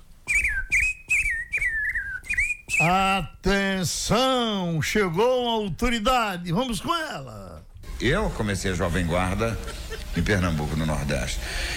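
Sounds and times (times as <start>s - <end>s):
person whistling a birdlike call with chirping phrases and a warbling trill: 0.2s - 3.1s
speech: 2.8s - 11.7s.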